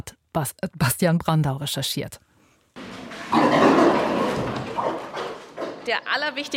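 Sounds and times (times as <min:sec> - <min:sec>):
speech: 0:00.0 - 0:02.2, 0:05.9 - 0:06.5
pigs grunting and snuffling in a stable: 0:02.8 - 0:05.9.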